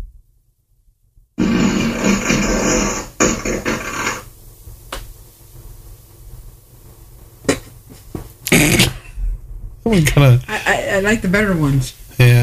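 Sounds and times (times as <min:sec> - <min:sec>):
fart sound effect from a small smart speaker: 0:01.4 - 0:04.3, 0:08.4 - 0:09.2
speech: 0:09.9 - 0:12.4.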